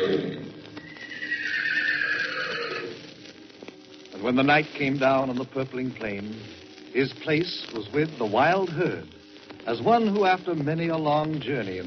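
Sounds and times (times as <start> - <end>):
long bugling horse neigh: 0.0 - 3.0
speech: 4.2 - 11.8.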